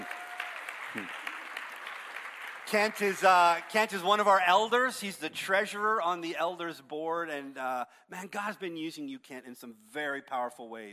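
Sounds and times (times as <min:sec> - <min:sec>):
audience applause: 0:00.0 - 0:03.9
speech: 0:00.9 - 0:01.2, 0:02.7 - 0:10.9.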